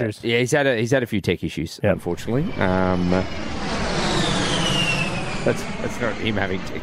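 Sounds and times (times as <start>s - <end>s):
speech: 0.0s - 3.6s, 5.4s - 6.8s
high whining tone: 1.9s - 6.8s
loud steady airplane engine roar: 1.9s - 6.8s.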